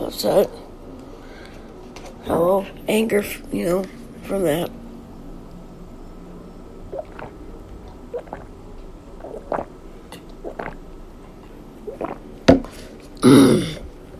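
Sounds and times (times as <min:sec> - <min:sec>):
speech: 0:00.0 - 0:00.7, 0:02.2 - 0:04.8
breathy exhale: 0:01.2 - 0:01.7
person gulping and swallowing water: 0:06.9 - 0:08.5, 0:09.2 - 0:10.8, 0:11.8 - 0:12.3, 0:13.2 - 0:13.9.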